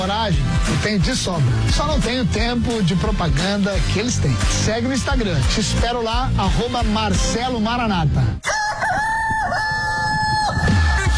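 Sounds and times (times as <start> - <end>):
speech: 0.0 - 8.6
rooster crowing: 8.4 - 11.1.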